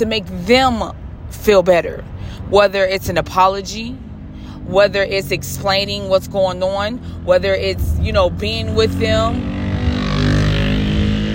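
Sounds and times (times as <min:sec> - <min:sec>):
speech: 0:00.0 - 0:09.5
motorcycle engine roaring: 0:03.2 - 0:11.3.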